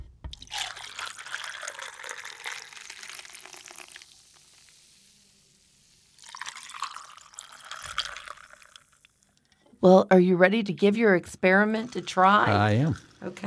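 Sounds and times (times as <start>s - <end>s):
Dr Pepper soda pouring over ice for an amaretto drink: 0.3s - 9.2s
speech: 9.8s - 13.4s.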